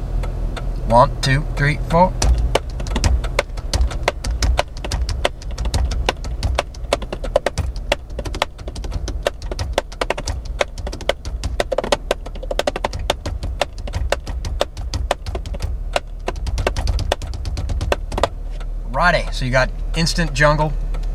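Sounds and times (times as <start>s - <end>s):
low car engine rumble: 0.0s - 21.1s
speech: 0.9s - 2.2s, 19.4s - 20.8s
hands drumming on hard surfaces inside a car: 2.1s - 18.7s.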